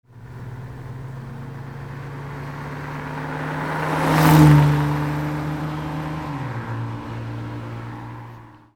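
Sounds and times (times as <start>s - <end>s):
Ferrari 400i: 0.0s - 8.7s.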